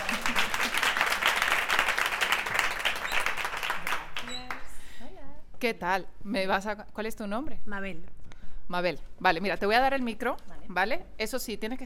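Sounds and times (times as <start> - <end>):
audience applause: 0.0 - 4.6
speech: 5.6 - 11.8.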